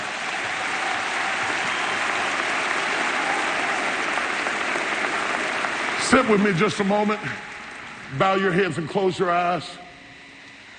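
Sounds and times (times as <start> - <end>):
audience clapping hands in praise: 0.0 - 9.0
speech: 6.1 - 7.5, 8.1 - 9.8.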